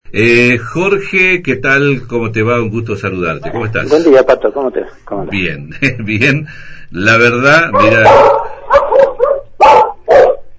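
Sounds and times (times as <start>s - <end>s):
speech: 0.1s - 8.4s
angry female dogs barking: 7.7s - 10.5s.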